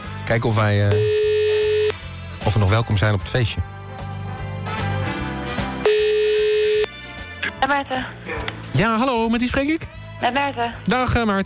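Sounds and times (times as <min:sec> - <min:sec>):
music: 0:00.0 - 0:11.4
speech: 0:00.3 - 0:01.2, 0:02.4 - 0:03.7, 0:07.6 - 0:11.4
telephone tone as a call is placed: 0:00.9 - 0:02.0, 0:05.8 - 0:06.9.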